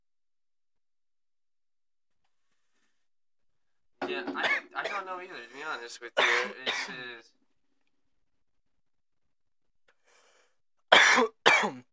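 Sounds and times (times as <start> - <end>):
harsh raspy coughs: 4.1 - 5.4, 6.2 - 7.1, 10.9 - 11.9
speech: 4.2 - 7.4.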